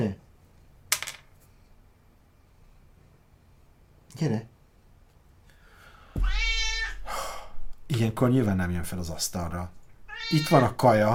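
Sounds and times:
speech: 4.1 - 4.5, 7.9 - 11.1
cat meowing from the floor: 6.2 - 7.1, 10.1 - 10.8.

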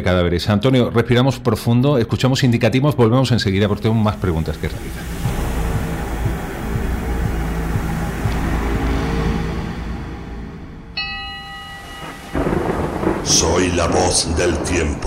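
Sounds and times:
speech: 0.0 - 5.2, 13.6 - 15.0
heavy rain hiss in a thunderstorm: 3.8 - 10.4, 11.7 - 15.0
deep rolling thunder rumble in a thunderstorm: 4.2 - 10.8, 11.5 - 15.0
ringing tone: 9.8 - 13.2.

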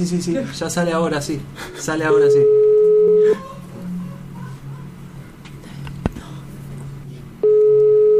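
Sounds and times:
speech: 0.0 - 3.5
steady telephone call tone while a number is being dialed: 2.2 - 3.4, 7.4 - 8.1.

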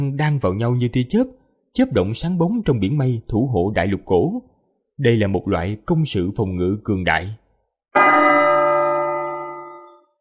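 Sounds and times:
speech: 0.0 - 8.0
large golden bell struck in a heavenly palace: 8.0 - 10.1.

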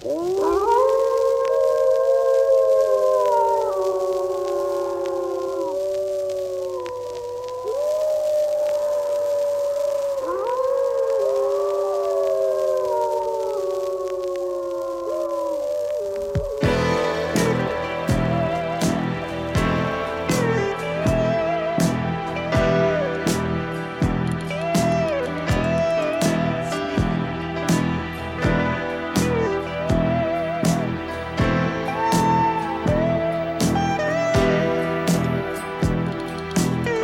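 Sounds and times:
wolves howling in the Apennines: 0.0 - 37.0
music with a steady, regular beat: 16.4 - 37.0.

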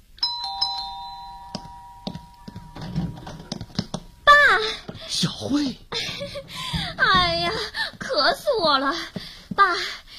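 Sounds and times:
electronic doorbell chiming: 0.2 - 4.5
dull knocks and thuds: 1.6 - 5.1, 6.0 - 9.6
speech: 5.2 - 10.0.

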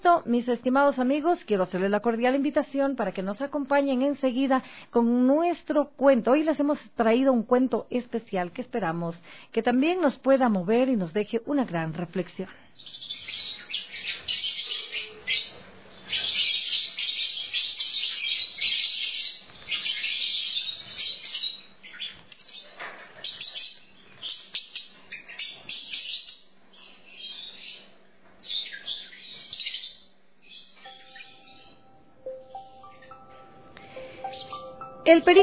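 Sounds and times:
speech: 0.0 - 13.2, 35.1 - 35.4
small parrots chirping: 12.8 - 33.2.

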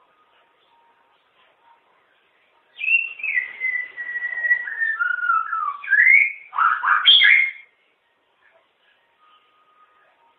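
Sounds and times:
long-tailed shrike song with falling whistle and wavering warble: 2.8 - 7.6.

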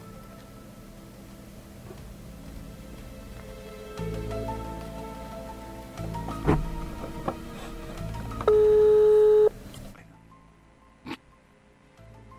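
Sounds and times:
noisy background: 0.0 - 12.3
telephone line ringing during a live call-in: 8.4 - 9.5.

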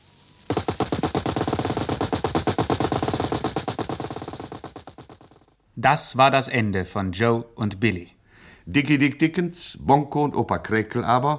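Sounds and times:
machine gun fire: 0.5 - 5.5
speech: 5.8 - 11.3.

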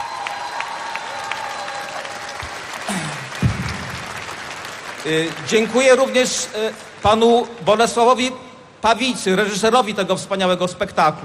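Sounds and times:
large crowd applauding at a music festival: 0.0 - 7.5
speech: 5.0 - 11.2.

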